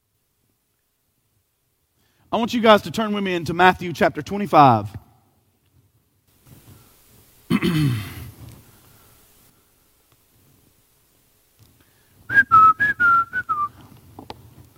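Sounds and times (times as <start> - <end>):
speech: 2.3 - 5.0
brief throaty burst of noise: 6.7 - 9.4
person whistling a short tune: 12.3 - 13.8.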